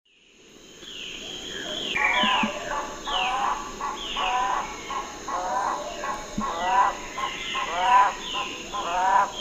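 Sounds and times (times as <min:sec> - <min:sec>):
Broad-billed Motmot Electron platyrhynchum pyrrholaemum calling: 0:01.9 - 0:09.3.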